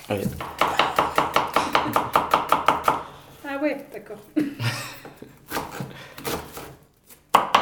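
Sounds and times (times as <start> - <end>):
speech: 0.1 - 0.6, 3.6 - 5.0
knife chopping onions and a tomato for a sauce: 0.2 - 3.2, 5.4 - 7.6.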